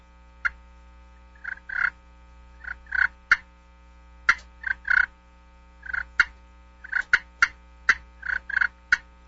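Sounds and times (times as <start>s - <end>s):
slate turkey call soft rolling purrs: 1.3s - 3.4s, 4.3s - 5.1s, 5.8s - 9.2s
slate turkey call clucks: 1.4s - 2.0s, 2.6s - 3.5s, 4.3s - 5.1s, 5.8s - 9.1s.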